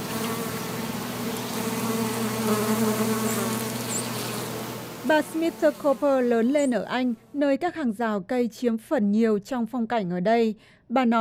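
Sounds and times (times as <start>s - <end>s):
native bees buzzing among planted flowers: 0.0s - 7.1s
speech: 5.1s - 11.1s.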